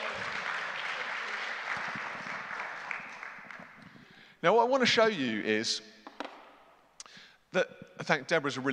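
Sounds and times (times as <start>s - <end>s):
audience applause: 0.0s - 3.9s
speech: 4.4s - 5.9s, 7.5s - 8.7s.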